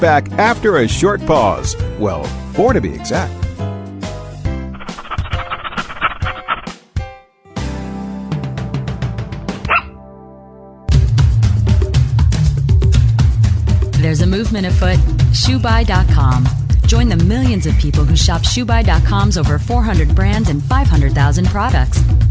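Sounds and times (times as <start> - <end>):
speech: 0.0 - 3.4, 14.1 - 22.2
musical backing: 0.0 - 5.5, 6.2 - 22.2
dog barking: 9.6 - 10.0.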